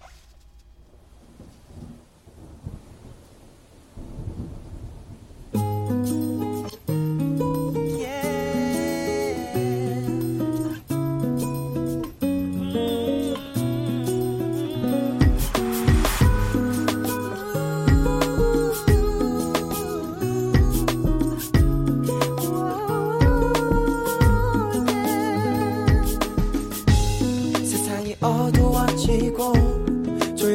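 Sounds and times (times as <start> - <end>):
rain-like noise: 0.4 - 22.8
K-pop song playing: 6.9 - 30.5
fuller beat with drums: 15.2 - 25.2, 25.8 - 30.5.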